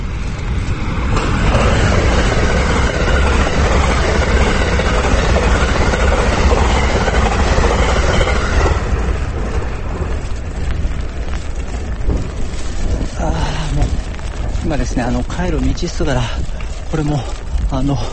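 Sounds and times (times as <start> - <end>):
train passing by: 0.0 - 18.1
speech: 15.4 - 18.1.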